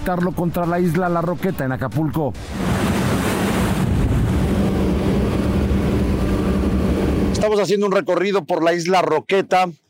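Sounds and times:
speech: 0.0s - 3.3s, 7.4s - 9.8s
low rumbling churn: 0.0s - 7.7s
speedboat riding over choppy sea waves: 0.0s - 7.9s
wind gusts buffeting the microphone: 2.4s - 7.4s.

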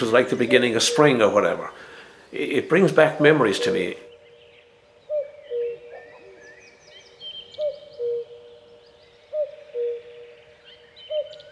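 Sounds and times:
speech: 0.0s - 4.0s
cuckoo calling in the distance: 0.0s - 11.5s
faint chirping from other birds: 0.0s - 11.5s.

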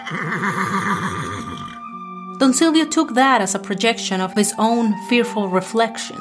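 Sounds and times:
speech: 0.0s - 1.8s, 2.4s - 6.1s
unsettled horse neighing: 0.0s - 1.8s.

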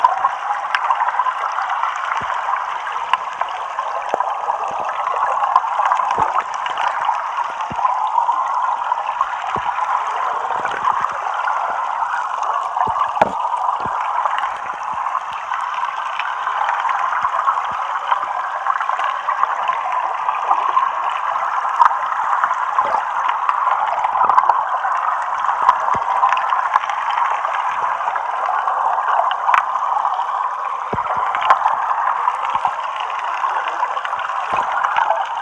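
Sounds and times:
underwater stream in Pasadena CA recorded with a homemade hydrophone: 0.0s - 35.3s.

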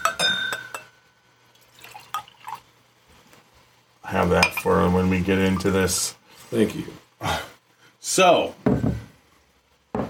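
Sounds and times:
glass clinking: 0.0s - 2.6s, 4.4s - 4.8s
water poured into a glass in gurgling bursts: 1.5s - 2.7s
speech: 4.1s - 7.4s, 8.2s - 8.9s.

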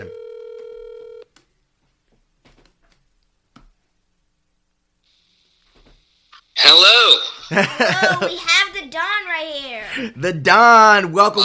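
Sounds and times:
loud telephone tone: 0.0s - 1.3s
speech: 6.7s - 11.4s
laughter: 7.3s - 8.4s.

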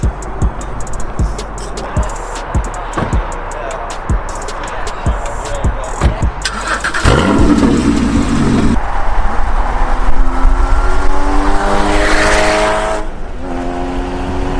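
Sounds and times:
road noise: 0.0s - 14.5s
sports car engine revving as it pulls away: 6.4s - 14.5s.

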